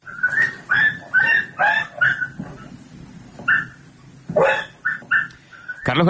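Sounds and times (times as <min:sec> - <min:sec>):
dog yelping in sharp high-pitched cries while being beaten: 0:00.1 - 0:02.7, 0:03.4 - 0:05.8
speech: 0:05.9 - 0:06.0.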